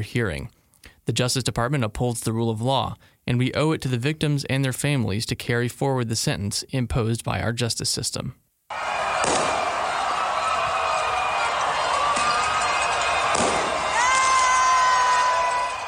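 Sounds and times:
speech: 0:00.0 - 0:08.9
crowd cheering at a street celebration in Puerto Rico: 0:08.7 - 0:15.8
fireworks at a street celebration in Puerto Rico: 0:08.7 - 0:15.8.

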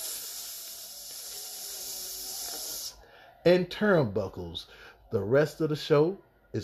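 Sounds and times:
steady bright sizzling hiss: 0:00.0 - 0:03.0
speech: 0:03.4 - 0:06.6.

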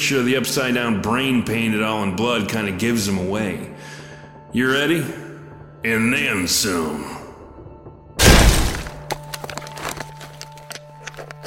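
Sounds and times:
speech: 0:00.1 - 0:03.7, 0:04.5 - 0:05.2, 0:05.8 - 0:07.2
door being violently smashed open: 0:08.2 - 0:10.0
debris clattering and settling: 0:08.2 - 0:11.4.

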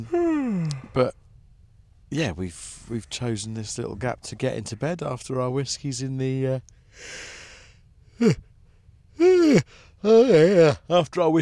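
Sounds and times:
person yawning in a sleeper train bunk: 0:00.0 - 0:01.0, 0:08.2 - 0:08.4, 0:09.2 - 0:10.8
speech: 0:00.0 - 0:01.2, 0:02.1 - 0:07.4, 0:08.2 - 0:08.5, 0:09.2 - 0:11.4.

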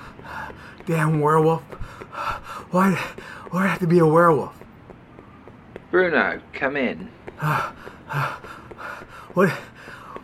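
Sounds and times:
heavy rhythmic panting: 0:00.0 - 0:04.1, 0:07.3 - 0:10.2
speech: 0:00.8 - 0:01.8, 0:02.7 - 0:04.6, 0:05.9 - 0:08.4, 0:09.4 - 0:09.7
louder voiced gasp: 0:01.8 - 0:03.5, 0:07.4 - 0:10.2.

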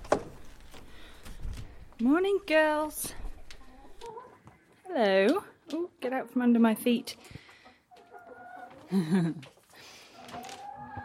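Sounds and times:
speech: 0:02.0 - 0:03.2, 0:04.9 - 0:07.4, 0:08.9 - 0:09.5
several chickens clucking and murmuring around feet: 0:03.1 - 0:11.0.

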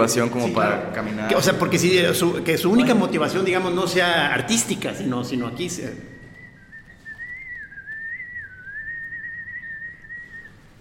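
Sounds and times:
speech: 0:00.0 - 0:06.2
parakeet whistling: 0:05.9 - 0:10.7.

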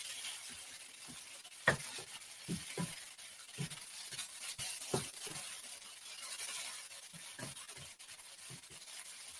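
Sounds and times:
tofu scramble and spinach sizzling in a pan: 0:00.0 - 0:09.3
utensil scraping and stirring tofu scramble and spinach in a pan: 0:00.0 - 0:09.3
utensil knocking on pan: 0:01.6 - 0:03.0.

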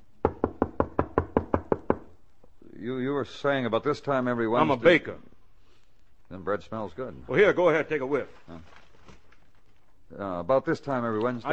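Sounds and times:
knocking on a door: 0:00.2 - 0:02.1
speech: 0:02.8 - 0:05.3, 0:06.3 - 0:08.8, 0:10.1 - 0:11.5.

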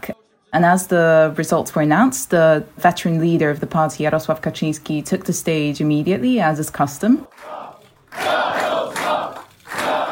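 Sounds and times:
speech: 0:00.5 - 0:07.6
large crowd chanting in unison at an election night rally: 0:07.2 - 0:10.1.

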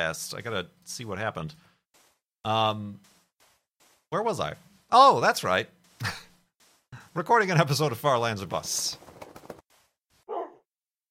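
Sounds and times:
speech: 0:00.0 - 0:01.7, 0:02.4 - 0:03.2, 0:04.1 - 0:06.2, 0:07.2 - 0:09.0
dog barking: 0:10.3 - 0:10.6.

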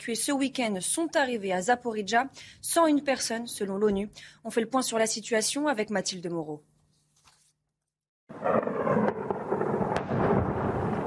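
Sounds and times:
speech: 0:00.0 - 0:06.7
explosions in a besieged city: 0:08.3 - 0:11.0.

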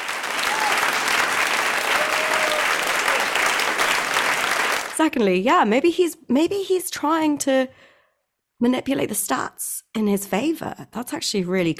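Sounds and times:
crowd applauding: 0:00.0 - 0:05.0
speech: 0:05.0 - 0:07.9, 0:08.6 - 0:11.7.

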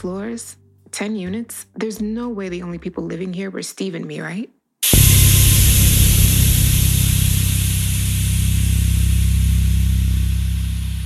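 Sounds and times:
speech: 0:00.0 - 0:05.2
steam hissing through old boiler pipes: 0:04.8 - 0:11.0.

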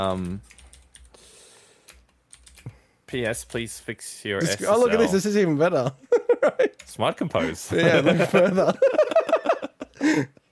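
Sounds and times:
speech: 0:00.0 - 0:00.6, 0:03.1 - 0:09.0, 0:10.2 - 0:10.4
keystrokes on a computer keyboard typing a letter: 0:00.0 - 0:03.7
laughter: 0:06.1 - 0:10.3.

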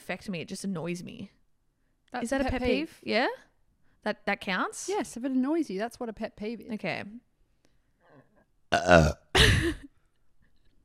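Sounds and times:
speech: 0:00.1 - 0:01.4, 0:02.1 - 0:07.3, 0:08.7 - 0:09.9
loud throaty burp: 0:08.7 - 0:09.5.

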